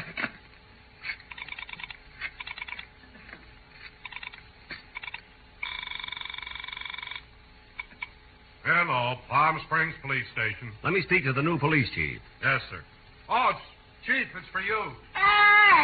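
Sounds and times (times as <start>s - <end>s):
loud buzzy telephone ring: 1.3s - 2.9s, 4.0s - 8.0s
speech: 9.4s - 15.8s.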